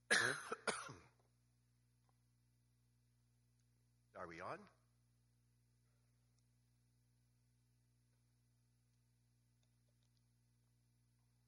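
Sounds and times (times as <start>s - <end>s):
man coughing with raspy throat-clearing: 0.0s - 1.2s
faint low hum: 0.2s - 11.4s
speech: 4.2s - 4.8s.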